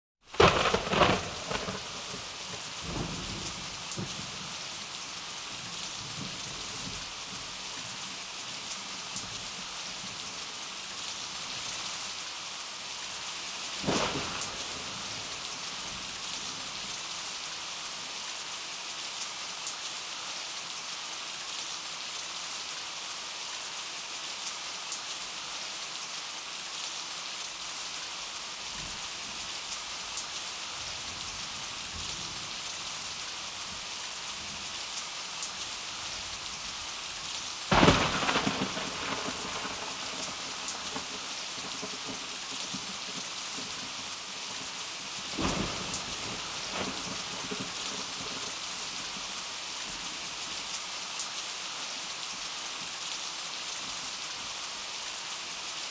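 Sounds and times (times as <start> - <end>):
heavy rain downpour in a jungle: 0.2 - 55.8
thunder in a jungle: 0.3 - 4.3, 13.8 - 15.4, 37.7 - 42.9, 45.3 - 48.5.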